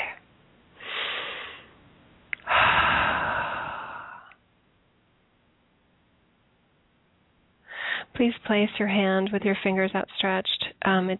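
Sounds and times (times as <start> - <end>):
deep breaths: 0.8 - 1.8, 2.4 - 4.4, 7.6 - 8.1
speech: 8.2 - 11.1.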